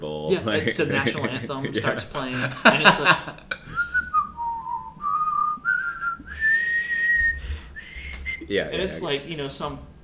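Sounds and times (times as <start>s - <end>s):
speech: 0.0s - 3.6s, 8.5s - 9.9s
laughter: 0.2s - 4.3s
person whistling a melody: 3.7s - 8.5s.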